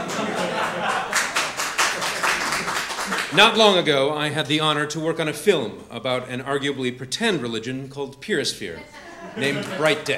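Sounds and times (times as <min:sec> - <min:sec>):
laughter: 0:00.0 - 0:03.5, 0:08.7 - 0:10.1
audience applause: 0:00.0 - 0:03.7
speech: 0:03.3 - 0:10.1.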